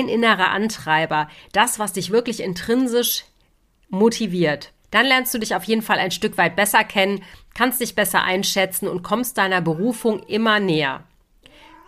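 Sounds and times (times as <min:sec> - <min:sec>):
speech: 0:00.0 - 0:03.3, 0:03.9 - 0:11.1
old deaf cat meowing loudly: 0:09.6 - 0:10.5, 0:11.5 - 0:11.8.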